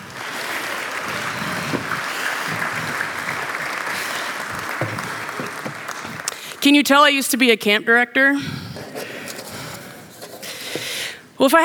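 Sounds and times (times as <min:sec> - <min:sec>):
audience applauding children: 0:00.0 - 0:06.7
speech: 0:06.6 - 0:08.6, 0:11.4 - 0:11.6.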